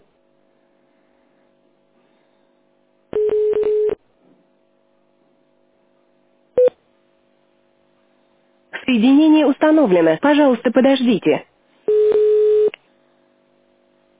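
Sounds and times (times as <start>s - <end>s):
DTMF telephone keypad tones dialing an extension: 3.2s - 4.0s, 11.9s - 12.8s
speech: 8.9s - 11.5s.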